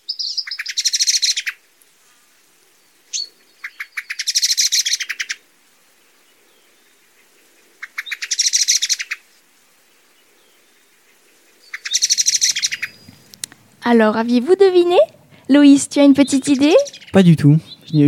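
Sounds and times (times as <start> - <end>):
common blackbird singing bright twittering phrases: 0.0 - 1.6, 3.1 - 5.4, 7.8 - 9.2, 11.6 - 18.0
speech: 13.9 - 18.0.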